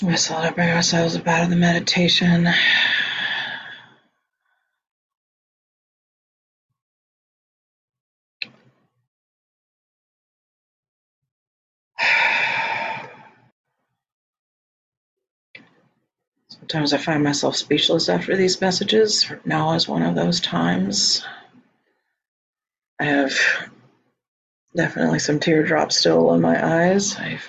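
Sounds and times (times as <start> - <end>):
speech: 0.0 - 3.2, 16.7 - 21.4, 23.0 - 23.8, 24.8 - 27.4
deep slow breaths during a guided meditation: 12.0 - 13.5.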